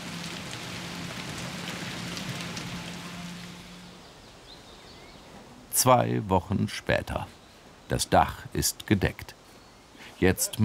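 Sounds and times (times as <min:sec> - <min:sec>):
steady rain pattering on surfaces: 0:00.0 - 0:04.0
speech: 0:05.8 - 0:09.4, 0:10.2 - 0:10.6.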